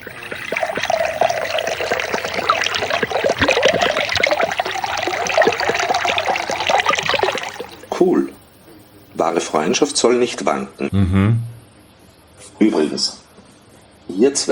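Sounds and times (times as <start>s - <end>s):
soda water pouring into a glass: 0.0s - 8.4s
crackling bubbles and splashes of soda water: 0.0s - 8.5s, 9.2s - 10.0s
speech: 8.0s - 8.4s, 9.2s - 11.5s, 12.6s - 13.2s, 14.2s - 14.5s.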